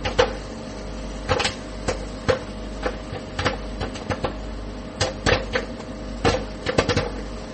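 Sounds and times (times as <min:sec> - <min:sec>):
microwave oven hum: 0:00.0 - 0:07.5
popcorn popping in a microwave oven: 0:00.0 - 0:07.5.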